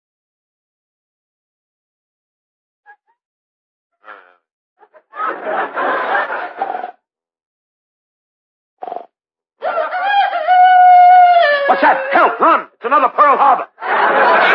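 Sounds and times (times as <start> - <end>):
laughter: 4.8 - 7.0, 13.7 - 14.5
chicken crowing: 9.6 - 12.3.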